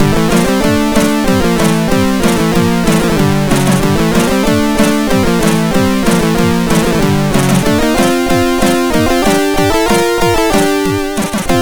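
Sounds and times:
SID chip rock cover: 0:00.0 - 0:11.5.

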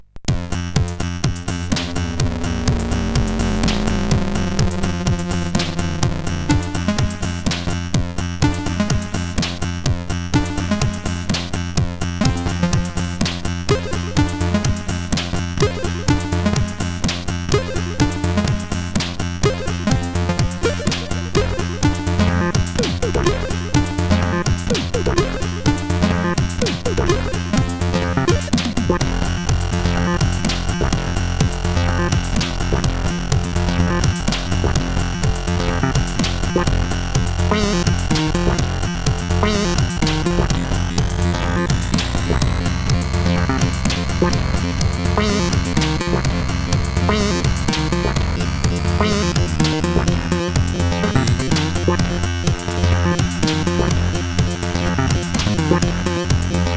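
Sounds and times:
main tune played on a CSG8580R5 sound chip: 0:00.4 - 0:09.6, 0:10.2 - 0:56.7.

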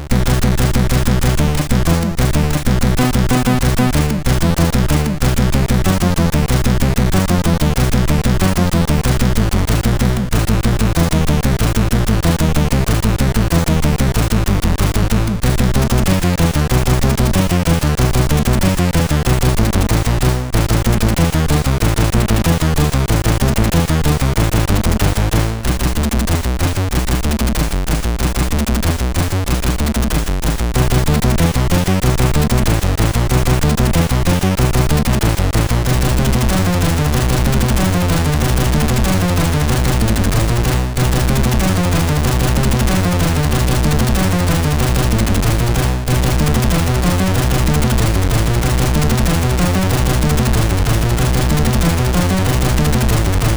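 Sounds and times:
short techno on MOS6581R3 SID chip: 0:00.1 - 0:53.5.

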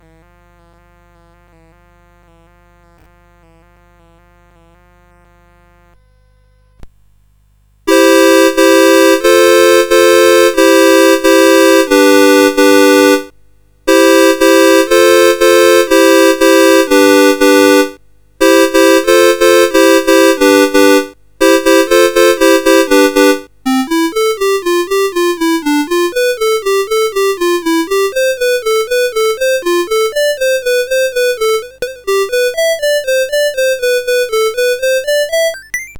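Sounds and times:
CSG8580R5 synthesizer chord: 0:07.9 - 0:13.3, 0:13.9 - 0:35.9.

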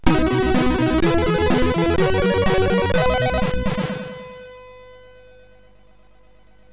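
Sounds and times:
chiptune sound effect on a MOS6581 SID chip: 0:00.0 - 0:04.4.

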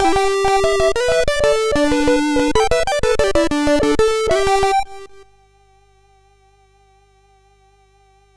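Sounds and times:
game music on a MOS6581R3 SID chip: 0:00.0 - 0:05.2.

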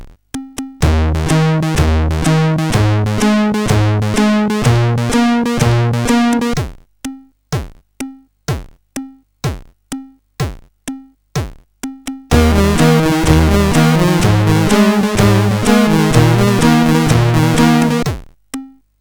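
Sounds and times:
Sudanese drum rhythm: 0:00.8 - 0:06.6, 0:12.3 - 0:18.1.

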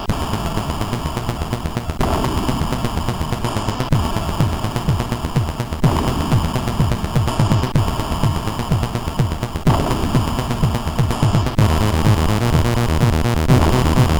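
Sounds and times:
short intro tune on a MOS6581 sound chip: 0:00.1 - 0:14.1.

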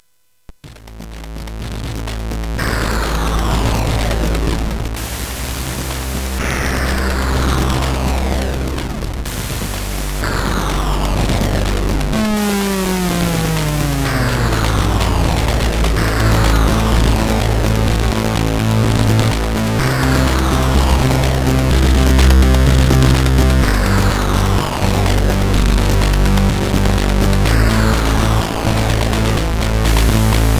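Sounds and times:
synthesized drum music on a CSG8580R5 sound chip: 0:00.6 - 0:30.5.

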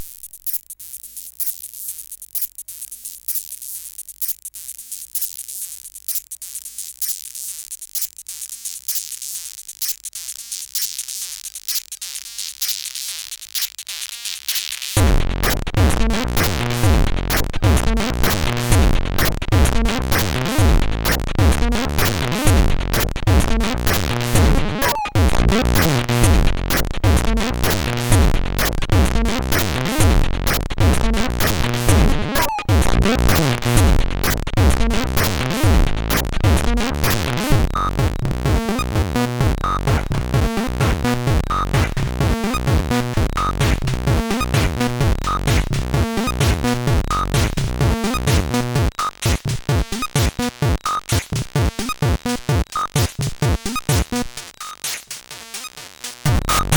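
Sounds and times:
SID CSG8580R5 chip song loop: 0:15.0 - 0:56.7.

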